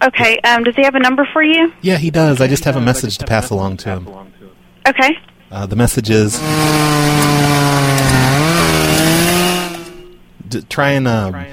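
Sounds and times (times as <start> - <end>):
speech: 0.0 - 8.3, 10.5 - 11.5
chainsaws cutting down trees in a yard: 6.2 - 10.2.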